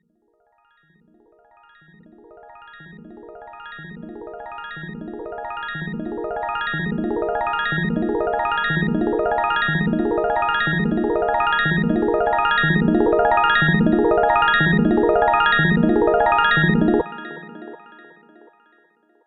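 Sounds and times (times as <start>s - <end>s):
synthesizer upward arpeggio: 4.9s - 17.7s.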